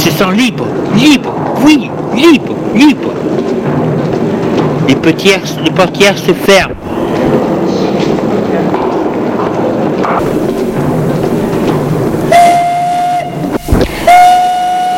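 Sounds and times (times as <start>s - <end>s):
speech: 0.0s - 3.4s, 5.0s - 7.4s
rumble and clatter of a train at a station: 0.0s - 14.2s
shrill train departure whistle: 12.3s - 14.9s.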